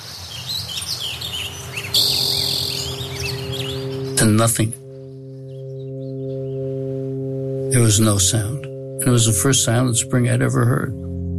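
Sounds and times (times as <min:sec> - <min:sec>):
diverse wild birdsong chorus in Northern California: 0:00.0 - 0:09.9
steady insect trilling: 0:01.2 - 0:10.1
speech: 0:04.2 - 0:04.8, 0:07.7 - 0:11.1.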